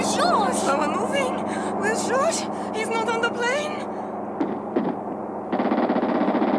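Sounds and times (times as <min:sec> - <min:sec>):
speech: 0:00.1 - 0:03.9
gunfire: 0:04.4 - 0:06.5.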